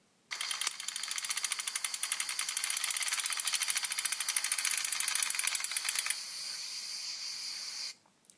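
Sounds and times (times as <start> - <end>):
bicycle freewheel ticking while ridden in Italy: 0.3 - 6.2.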